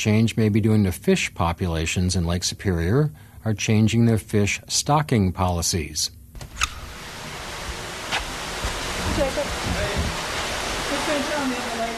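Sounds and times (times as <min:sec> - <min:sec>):
speech: 0:00.0 - 0:06.7
running water in the tanks of a cold water fish hatchery: 0:06.8 - 0:11.9.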